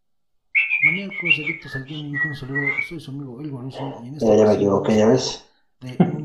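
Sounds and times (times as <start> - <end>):
person whistling shrilly: 0.6 - 3.0
low voice-like hum: 0.9 - 4.9
speech: 1.0 - 6.2.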